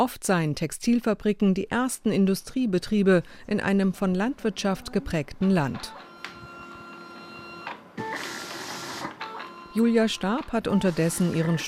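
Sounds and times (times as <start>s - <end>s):
speech: 0.0s - 6.1s, 9.8s - 11.6s
plotter printing sewing patterns in a clothing label's workshop: 3.7s - 11.6s.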